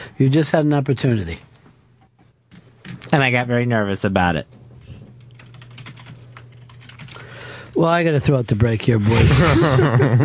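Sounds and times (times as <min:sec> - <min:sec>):
faint low hum: 0:00.0 - 0:10.2
speech: 0:00.1 - 0:01.5, 0:03.1 - 0:04.6, 0:07.8 - 0:10.2
keyboard typing: 0:05.2 - 0:07.7
laughter: 0:09.0 - 0:10.2.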